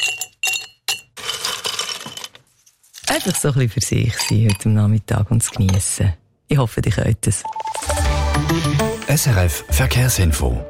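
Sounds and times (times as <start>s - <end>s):
ice cubes clinking in a glass of Campari soda: 0.0s - 2.4s, 3.0s - 3.5s, 4.1s - 4.7s
speech: 3.1s - 7.8s, 8.4s - 10.6s.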